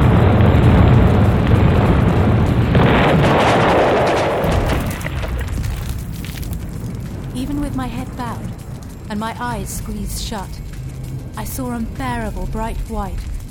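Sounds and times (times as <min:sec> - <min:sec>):
massive explosion by a square: 0:00.0 - 0:07.4
fire roaring up the mall: 0:00.0 - 0:13.5
speech: 0:09.1 - 0:10.6, 0:11.4 - 0:13.3.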